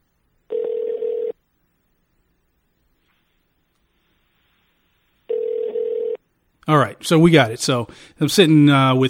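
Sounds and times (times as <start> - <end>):
faint telephone line hiss: 0.0 - 9.0
loud steady telephone ringback tones on outgoing call: 0.5 - 1.4, 5.3 - 6.2
speech: 6.7 - 9.0.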